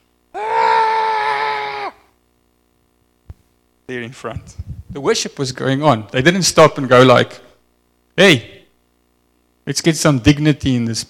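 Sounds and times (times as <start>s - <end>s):
man screaming: 0.4s - 2.0s
speech: 3.9s - 7.4s, 8.2s - 8.5s, 9.7s - 11.0s.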